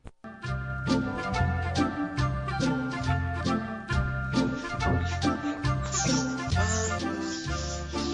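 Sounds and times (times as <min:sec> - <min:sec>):
parody song recording with bouncing bass line and tinkling instruments: 0:00.4 - 0:08.1.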